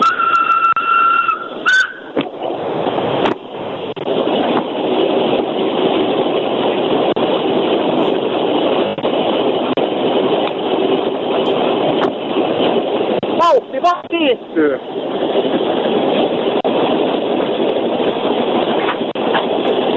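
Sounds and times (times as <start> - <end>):
steam locomotive whistle: 0.0 - 2.2
Ukko-Pekka class steam locomotive running from Lahti to Helsinki: 0.0 - 19.9.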